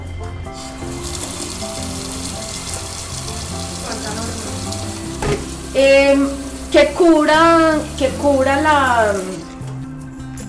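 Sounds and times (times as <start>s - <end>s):
loud sizzle and hiss of cooking meat: 0.5s - 10.0s
water pouring into a hot pot of cooking meat: 0.6s - 9.9s
faint clinks of cookware: 3.6s - 7.2s
speech: 5.8s - 9.4s.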